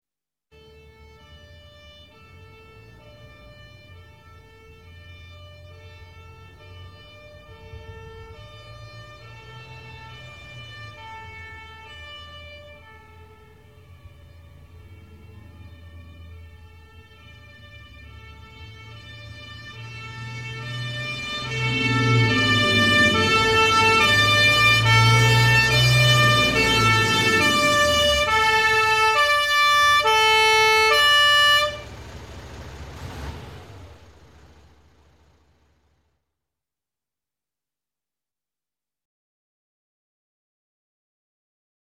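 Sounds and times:
fire engine siren approaching: 0:00.5 - 0:36.0.

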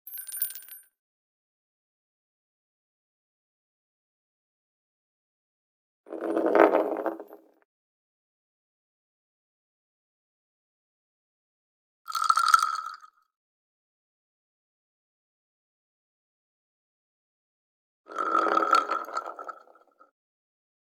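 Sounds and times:
metal and plastic shell rolling on concrete and wood: 0:06.1 - 0:07.4, 0:18.2 - 0:19.7.

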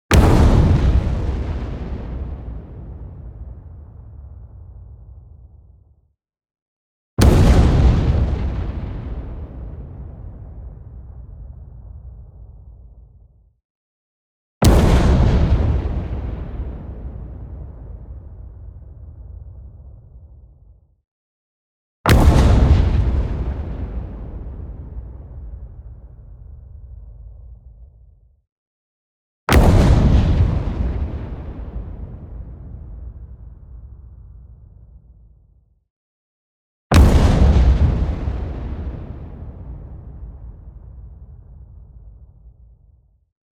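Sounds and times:
long bright explosion impact: 0:00.1 - 0:05.8, 0:07.2 - 0:13.2, 0:14.6 - 0:20.6, 0:22.1 - 0:27.3, 0:29.5 - 0:34.4, 0:36.9 - 0:42.2.

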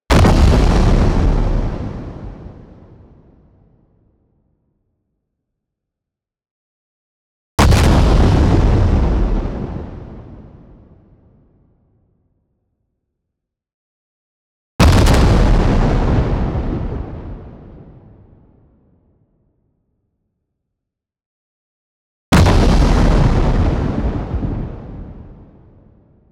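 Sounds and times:
long low rough distorted explosion with tail: 0:00.1 - 0:03.5, 0:07.6 - 0:11.1, 0:14.8 - 0:18.3, 0:22.3 - 0:25.9.

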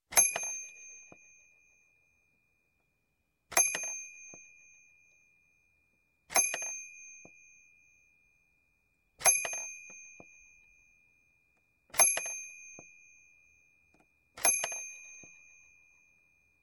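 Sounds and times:
toy bell: 0:00.1 - 0:02.3, 0:03.5 - 0:05.6, 0:06.3 - 0:08.4, 0:09.2 - 0:11.4, 0:12.0 - 0:13.8, 0:14.4 - 0:16.6.

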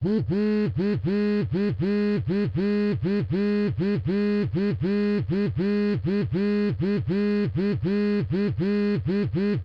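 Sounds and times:
phone vibrating in staccato bursts: 0:00.0 - 0:09.6.

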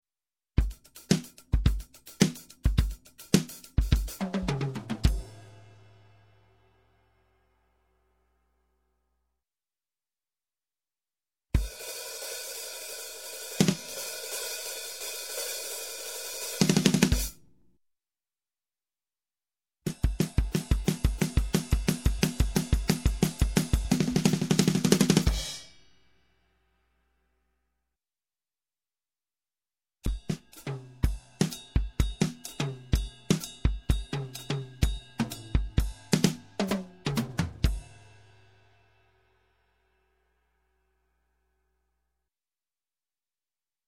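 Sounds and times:
rock drums: 0:00.6 - 0:06.0, 0:11.6 - 0:17.4, 0:19.9 - 0:25.8, 0:30.1 - 0:38.3.

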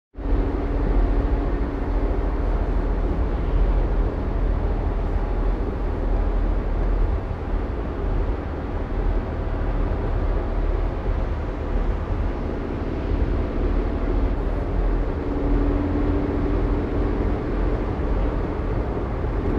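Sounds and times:
car driving on highway: 0:00.2 - 0:19.5.

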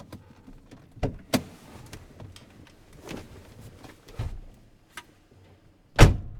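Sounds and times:
person getting out of a car: 0:00.0 - 0:04.7.

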